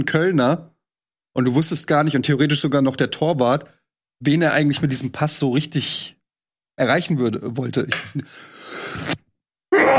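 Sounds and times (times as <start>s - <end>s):
speech: 0.0s - 0.7s, 1.4s - 6.2s, 6.8s - 9.2s
loud sneeze with sharp intake and explosive finish: 8.7s - 9.9s.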